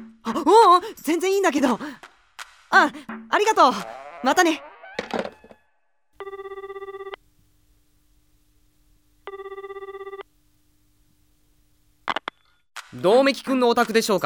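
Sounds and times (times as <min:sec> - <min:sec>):
speech: 0:00.3 - 0:02.1, 0:02.7 - 0:04.7, 0:13.0 - 0:14.2
telephone ringing with warbling bursts: 0:06.2 - 0:07.2, 0:09.3 - 0:10.2
low steady hum: 0:06.2 - 0:12.0.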